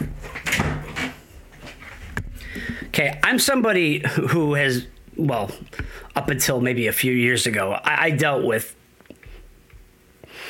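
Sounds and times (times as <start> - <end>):
door being pushed closed: 0.0 - 1.2
speech: 2.8 - 8.8.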